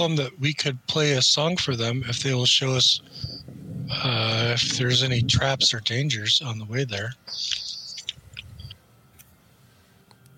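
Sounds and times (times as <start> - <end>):
speech: 0.0 - 7.6
faint low owl hoots in a forest at night: 3.0 - 5.1, 7.2 - 8.8
thin high chirps in a forest at night: 7.3 - 8.7.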